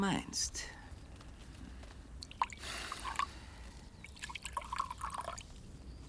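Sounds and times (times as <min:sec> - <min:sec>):
speech: 0:00.0 - 0:00.8
cognac pouring into a glass: 0:02.2 - 0:03.3, 0:04.1 - 0:05.6.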